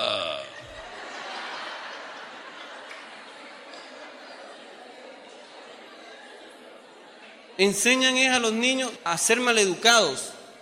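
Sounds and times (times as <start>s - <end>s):
loud raspy belch: 0.0s - 0.7s
laughter: 0.0s - 7.5s
speech: 7.6s - 10.4s.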